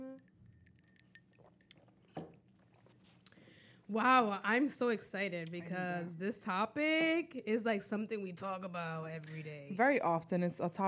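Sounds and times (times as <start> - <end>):
glasses clinking in a toast: 0.0 - 2.4
speech: 3.9 - 10.8.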